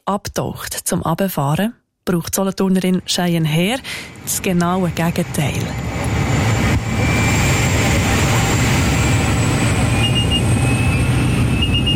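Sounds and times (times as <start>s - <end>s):
speech: 0.1s - 6.0s
high whine: 3.0s - 11.9s
small skydiving airplane engine drone inside the cabin: 3.0s - 11.9s.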